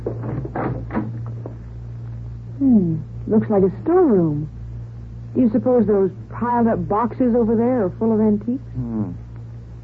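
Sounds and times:
wooden door creaking open with latch: 0:00.0 - 0:01.6
speech: 0:02.6 - 0:04.6, 0:05.3 - 0:09.2.

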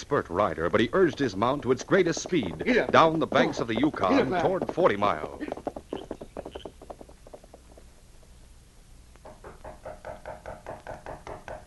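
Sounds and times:
speech: 0:00.0 - 0:05.6
knocking on a door: 0:01.8 - 0:07.9, 0:09.2 - 0:11.6.

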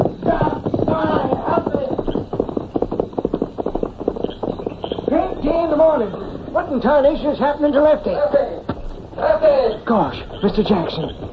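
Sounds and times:
horse hooves clip-clopping as a rider leaves on horseback: 0:00.0 - 0:11.3
speech: 0:06.0 - 0:08.5, 0:09.4 - 0:11.3.

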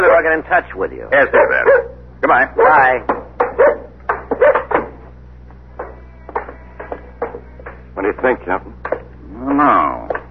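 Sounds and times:
speech: 0:00.0 - 0:03.8, 0:08.2 - 0:08.8, 0:09.6 - 0:10.1
dog barking and yipping: 0:01.2 - 0:02.0, 0:02.6 - 0:02.9, 0:03.5 - 0:04.8.

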